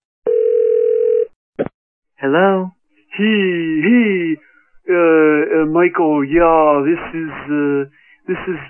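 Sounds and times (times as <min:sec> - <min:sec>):
telephone dial tone: 0:00.3 - 0:01.3
speech: 0:02.2 - 0:08.6.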